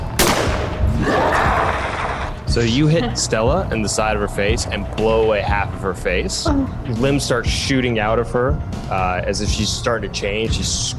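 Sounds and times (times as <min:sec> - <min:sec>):
rifle gunshot: 0:00.2 - 0:01.2
speech: 0:02.6 - 0:10.9.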